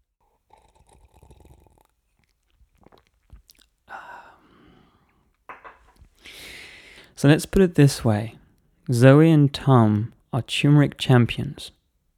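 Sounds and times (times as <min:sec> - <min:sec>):
person sipping a drink with soft slurps: 0:00.3 - 0:03.8
person swallowing a drink: 0:00.5 - 0:04.5
speech: 0:07.2 - 0:11.8.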